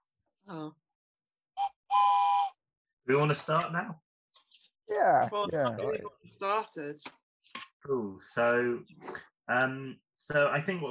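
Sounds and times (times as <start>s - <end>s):
loud steady shrill whistle blast: 1.6s - 2.6s
person's voice: 3.1s - 3.9s, 4.9s - 7.0s, 7.9s - 10.8s
speech: 3.1s - 4.0s, 4.9s - 7.2s, 7.8s - 10.8s.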